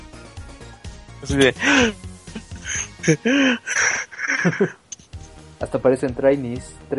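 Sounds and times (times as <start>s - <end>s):
speech: 1.2s - 2.0s, 3.0s - 4.8s, 5.6s - 6.9s
laughter: 1.3s - 4.8s
voice imitating heavy tired panting with breathy huffs and gasps: 1.5s - 4.8s.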